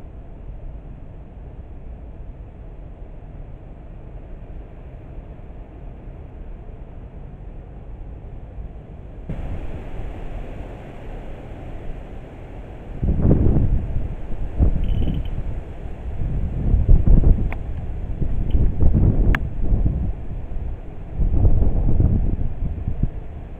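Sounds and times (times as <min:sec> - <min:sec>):
gusty wind buffeting the microphone: 0:09.1 - 0:23.5.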